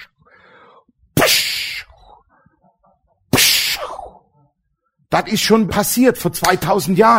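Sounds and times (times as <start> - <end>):
voice imitating a whip crack: 1.2 - 2.1, 3.3 - 4.2
speech: 5.1 - 7.1.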